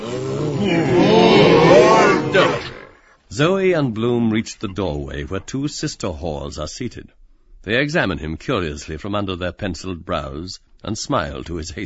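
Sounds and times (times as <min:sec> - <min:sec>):
large male animals roaring in a box: 0:00.0 - 0:03.0
speech: 0:00.6 - 0:01.0, 0:03.4 - 0:11.8.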